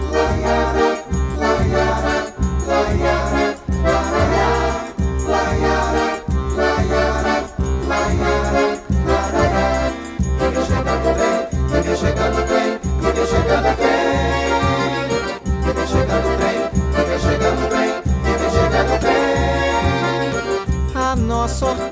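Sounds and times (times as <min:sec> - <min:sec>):
accordion orchestra playing a lively track with sustained reedy chords: 0:00.0 - 0:21.9
steady pulsing bass beat: 0:00.0 - 0:21.9
sung vocals: 0:00.0 - 0:21.9.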